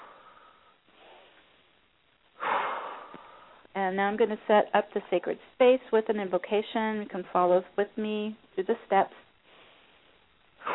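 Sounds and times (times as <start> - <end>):
deep breathing in and out: 0.0 - 1.8, 2.4 - 3.7, 9.4 - 10.7
speech: 3.8 - 9.2.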